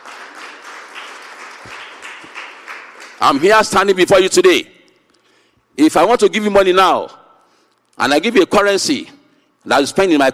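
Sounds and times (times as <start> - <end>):
congregation applauding: 0.0 - 3.4
speech: 3.2 - 4.8, 5.8 - 7.2, 8.0 - 10.3.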